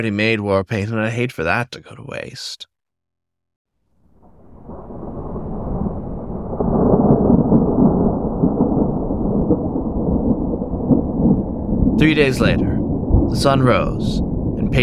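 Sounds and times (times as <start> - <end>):
speech: 0.0 - 2.7, 12.0 - 14.8
rolling thunder: 4.0 - 14.8.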